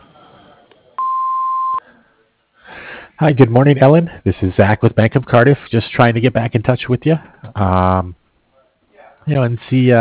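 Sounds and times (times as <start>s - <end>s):
answering machine beep before a message is recorded: 1.0s - 1.8s
speech: 3.2s - 8.2s, 9.2s - 9.9s.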